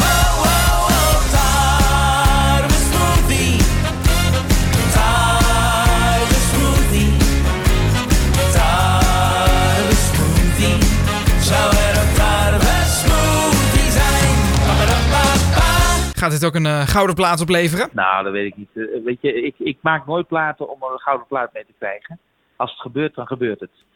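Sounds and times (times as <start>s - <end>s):
full-band pop song with heavy bass and melodic vocals: 0.0s - 7.4s, 8.4s - 17.9s
speech: 16.4s - 23.9s.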